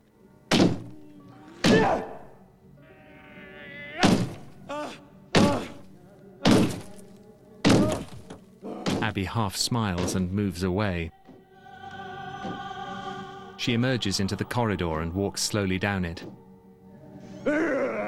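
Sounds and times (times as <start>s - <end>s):
man punching a wall with his left fist: 0.5s - 1.0s, 1.6s - 2.2s, 4.0s - 4.6s, 5.4s - 7.0s, 7.6s - 9.1s
man's strained rising vocal groan: 4.7s - 5.8s, 17.4s - 18.0s
speech: 9.2s - 11.2s, 13.6s - 16.4s.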